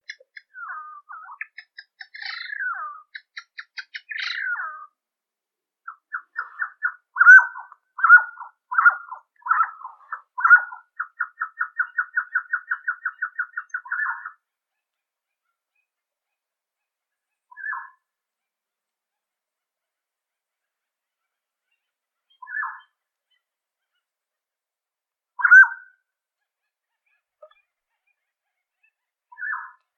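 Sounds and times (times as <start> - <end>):
mountain quail calling: 0.0 - 4.9, 5.9 - 14.4, 25.4 - 25.9.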